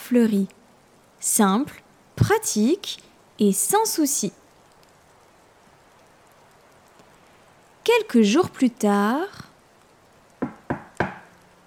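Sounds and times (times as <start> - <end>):
speech: 0.1 - 0.6, 1.2 - 4.4, 8.0 - 9.5
knocking on a wooden door: 10.4 - 11.3.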